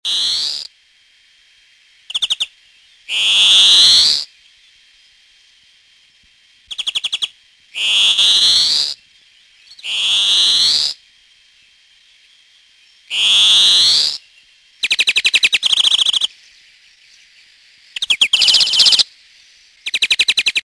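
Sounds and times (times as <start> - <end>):
greenfinch: 0.1 - 0.7, 2.1 - 2.5, 3.1 - 4.3, 6.7 - 9.0, 9.6 - 11.0, 13.0 - 20.6.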